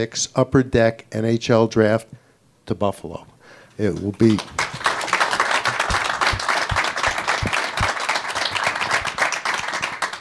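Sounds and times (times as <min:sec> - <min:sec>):
speech: 0:00.0 - 0:04.6
large audience applauding: 0:04.2 - 0:10.2.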